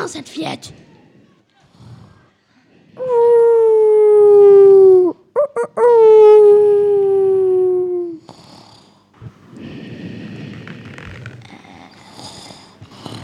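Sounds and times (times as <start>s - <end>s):
speech: 0.0s - 0.9s, 3.0s - 3.4s, 5.6s - 6.7s
short yelping breaths: 0.0s - 3.6s, 8.2s - 13.2s
voice imitating a wolf howl: 3.0s - 8.3s.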